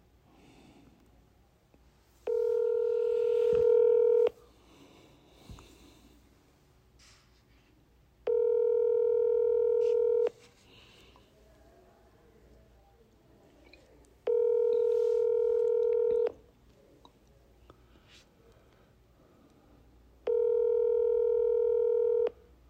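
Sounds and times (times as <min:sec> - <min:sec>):
quiet phone line hiss: 0:00.0 - 0:22.6
phone ringback tone from an outgoing call: 0:02.2 - 0:04.4, 0:08.3 - 0:10.3, 0:14.3 - 0:16.4, 0:20.2 - 0:22.4.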